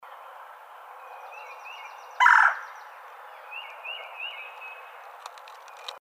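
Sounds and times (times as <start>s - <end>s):
Red-bellied Woodpecker buzzy call: 2.2s - 2.7s.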